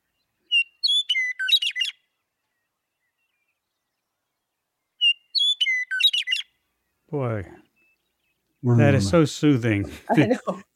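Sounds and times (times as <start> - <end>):
Western Meadowlark singing flute-like phrases: 0.0 - 8.7
speech: 7.1 - 7.6, 8.6 - 10.7.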